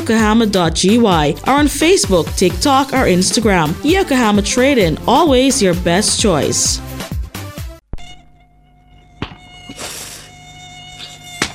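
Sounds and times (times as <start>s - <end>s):
speech: 0.0s - 7.0s
high thin whine of mosquitoes buzzing: 7.9s - 11.5s
sharp slaps or clicks: 9.2s - 9.4s, 11.0s - 11.5s.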